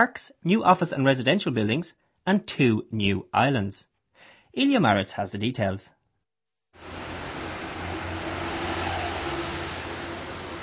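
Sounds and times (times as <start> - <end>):
speech: 0.0 - 6.0
afternoon traffic rushing past on a busy street: 6.8 - 10.6.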